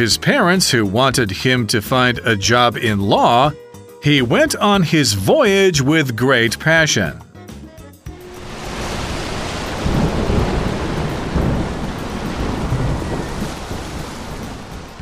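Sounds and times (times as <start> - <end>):
speech: 0.0 - 7.2
deep rolling thunder of a heavy storm: 8.1 - 15.0
heavy storm rain: 8.2 - 15.0.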